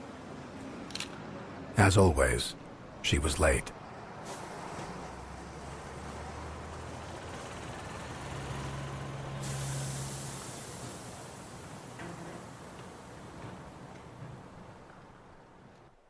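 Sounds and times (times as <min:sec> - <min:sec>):
bus engine low rumble: 0:00.0 - 0:16.0
speech: 0:01.8 - 0:03.8
bus air brakes hissing: 0:04.2 - 0:05.0, 0:07.3 - 0:15.7.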